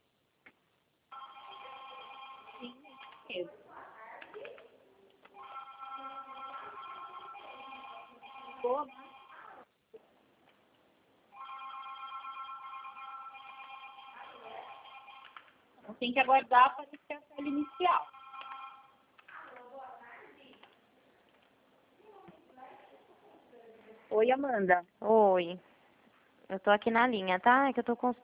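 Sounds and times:
telephone ringing over a narrowband phone line: 1.1s - 3.4s, 5.4s - 9.5s, 11.3s - 15.6s, 17.4s - 19.1s
speech: 2.6s - 3.6s, 16.0s - 18.2s, 24.1s - 25.7s, 26.5s - 28.2s.

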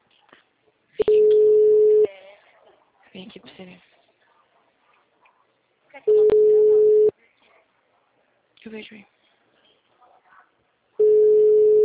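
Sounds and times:
steady single-pitched electronic telephone call tone: 1.0s - 2.1s, 6.1s - 7.1s, 11.0s - 11.8s
speech: 3.2s - 3.9s, 8.6s - 9.2s.

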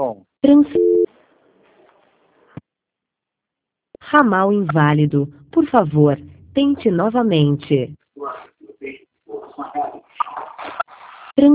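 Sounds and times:
telephone tone after a dropped call: 0.8s - 1.1s
speech: 4.2s - 8.5s.

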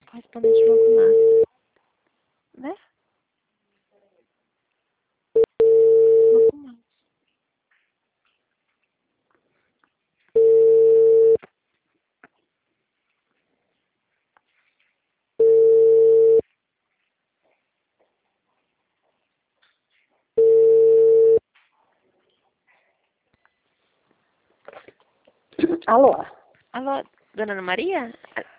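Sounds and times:
speech: 0.2s - 1.4s, 25.9s - 28.5s
telephone ringback tone while redialing a dropped call: 0.4s - 1.5s, 5.4s - 6.5s, 10.4s - 11.4s, 15.4s - 16.4s, 20.4s - 21.4s.

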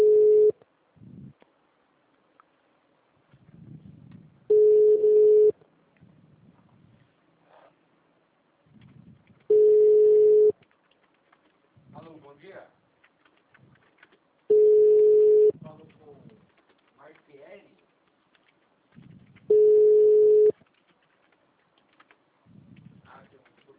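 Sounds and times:
telephone ringback tones of a call to a call center: 0.0s - 0.6s, 4.5s - 5.6s, 9.5s - 10.5s, 14.5s - 15.5s, 19.5s - 20.5s.

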